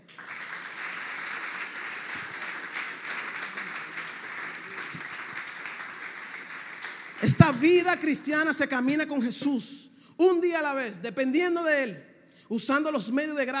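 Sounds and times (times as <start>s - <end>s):
congregation applauding: 0.0s - 8.5s
speech: 7.3s - 13.5s.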